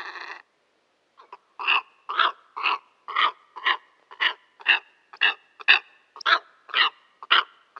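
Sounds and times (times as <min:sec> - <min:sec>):
steppe eagle giving harsh grating barks: 0:01.6 - 0:07.7.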